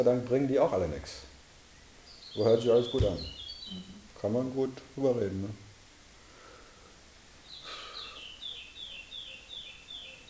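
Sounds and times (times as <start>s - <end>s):
speech: 0.0s - 1.3s, 2.4s - 5.6s
low hiss: 0.0s - 10.2s
birds singing outdoors: 1.6s - 4.6s, 7.4s - 10.2s.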